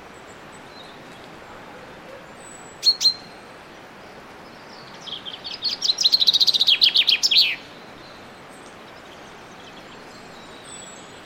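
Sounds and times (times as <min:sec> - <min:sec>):
common chaffinch Fringilla coelebs singing: 0:02.4 - 0:03.5, 0:04.4 - 0:11.2.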